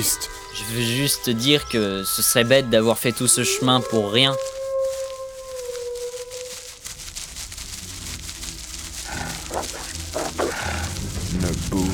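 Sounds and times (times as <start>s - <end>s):
speech: 0.0s - 4.6s
wind: 0.0s - 11.9s
pack of wolves howling and yelping: 1.8s - 7.2s, 9.0s - 11.0s.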